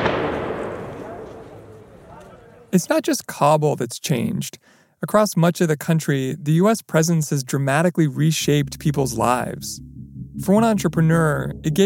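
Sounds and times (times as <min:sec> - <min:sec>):
heavy explosion boom with long rumbling echo: 0:00.0 - 0:02.0
speech: 0:02.7 - 0:11.8.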